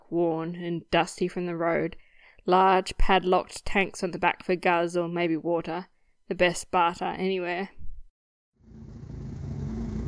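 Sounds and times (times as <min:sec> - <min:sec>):
speech: 0:00.1 - 0:07.8
worn patchwork truck engine starting and growling: 0:08.6 - 0:10.0.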